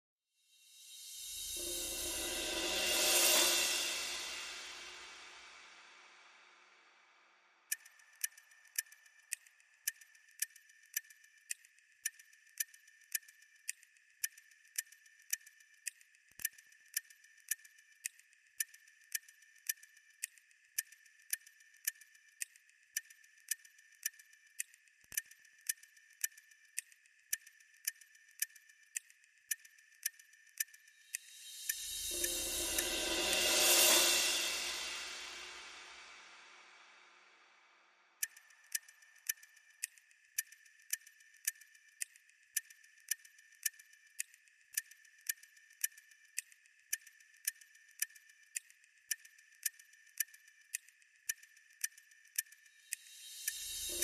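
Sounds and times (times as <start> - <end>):
cymbals: 0.7 - 6.6, 31.2 - 37.4, 53.1 - 54.0
clock ticking: 7.7 - 33.0, 38.2 - 54.0.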